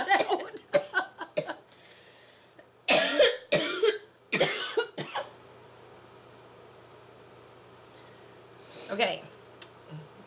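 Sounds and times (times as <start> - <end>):
faint hum: 0.0 - 10.2
person coughing: 0.1 - 1.6, 2.9 - 5.3
speech: 9.0 - 9.3.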